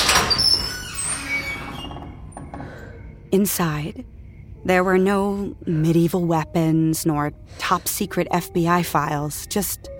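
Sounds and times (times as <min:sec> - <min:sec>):
door swinging open with a high-pitched creak: 0:00.0 - 0:03.1
speech: 0:03.3 - 0:09.9.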